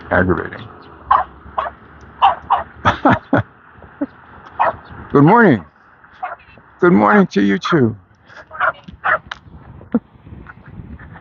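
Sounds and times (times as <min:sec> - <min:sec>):
speech: 0:00.1 - 0:00.8, 0:05.2 - 0:05.7, 0:06.8 - 0:08.0
small collie dog barking: 0:01.1 - 0:02.7, 0:04.6 - 0:04.9, 0:08.6 - 0:09.3
laughter: 0:02.7 - 0:04.2.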